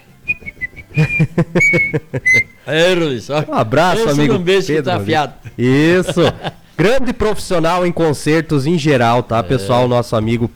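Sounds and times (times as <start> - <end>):
person whistling short bright notes: 0.2 - 2.7
laughter: 0.5 - 6.8
speech: 1.0 - 10.5.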